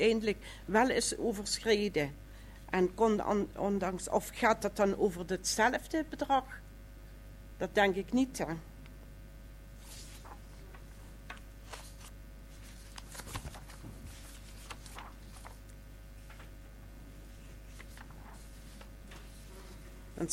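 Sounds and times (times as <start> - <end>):
speech: 0.0 - 6.6, 7.6 - 8.7
low steady hum: 0.0 - 20.3
pages of a document being turned: 9.8 - 16.6, 17.3 - 19.9.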